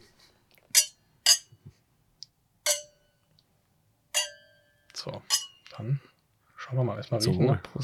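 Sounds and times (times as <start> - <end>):
glasses clinking in a toast: 0.8 - 1.5, 2.7 - 3.0, 4.2 - 5.8
speech: 5.0 - 7.8.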